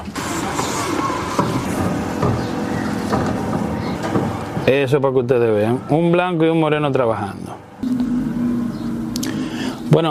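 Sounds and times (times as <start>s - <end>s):
garbage truck passing with engine rumble and road noise: 0.0s - 6.2s, 7.4s - 10.1s
speech: 4.7s - 7.7s, 10.0s - 10.1s.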